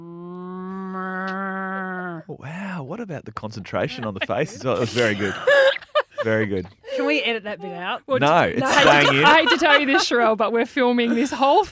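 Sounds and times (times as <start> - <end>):
person imitating a cow moo: 0.0 - 2.3
speech: 2.3 - 11.6
laughter: 3.9 - 6.9, 8.6 - 11.4.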